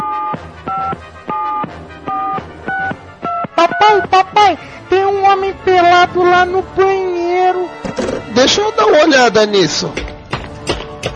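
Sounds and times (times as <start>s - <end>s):
telephone number keyed in with dual-tone beeps: 0.0s - 4.2s
speech: 3.8s - 7.7s, 8.4s - 10.1s.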